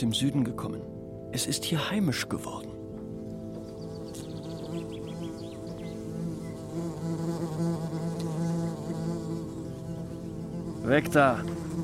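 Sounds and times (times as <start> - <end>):
speech: 0.0 - 2.8, 7.1 - 8.1, 10.8 - 11.6
several wasps buzzing: 3.6 - 11.8.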